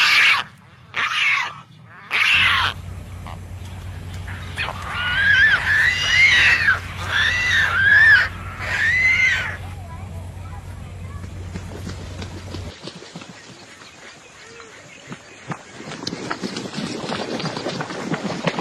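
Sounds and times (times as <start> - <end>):
pelican hoarse squealing cries: 0.0 - 2.8, 4.3 - 9.6
steady low hum: 1.6 - 18.5.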